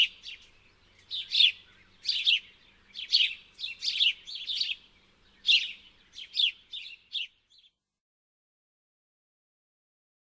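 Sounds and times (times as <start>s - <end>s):
house sparrow chirping: 0.0s - 7.8s.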